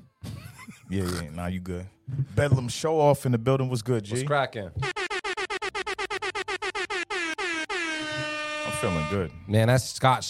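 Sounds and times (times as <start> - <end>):
speech: 0.9 - 4.9, 8.8 - 10.2
air horn blasts: 4.8 - 9.5.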